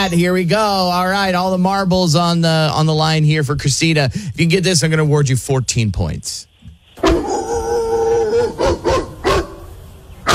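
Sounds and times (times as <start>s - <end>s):
speech: 0.0s - 7.4s
small puppy whining: 7.0s - 9.5s.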